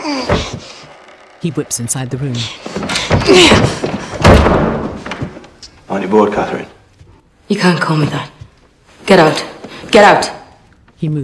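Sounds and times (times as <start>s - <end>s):
speech: 0.3s - 0.8s, 1.4s - 3.9s, 6.0s - 6.8s, 7.5s - 8.3s, 9.1s - 10.4s, 11.0s - 11.2s
door pushed shut and then forced open with heavy thuds and rattling: 2.6s - 5.4s.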